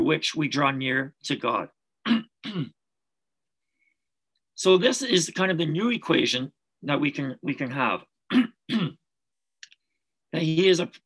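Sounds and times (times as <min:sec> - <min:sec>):
speech: 0:00.1 - 0:02.8, 0:04.6 - 0:09.0, 0:10.3 - 0:11.0
man clearing his throat: 0:02.0 - 0:02.8, 0:08.3 - 0:09.0.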